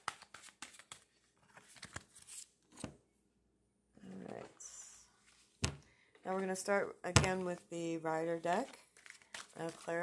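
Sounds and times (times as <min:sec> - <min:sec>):
tarot cards being shuffled: 0:00.0 - 0:02.9, 0:08.5 - 0:10.0
speech: 0:06.3 - 0:08.8, 0:09.6 - 0:10.0.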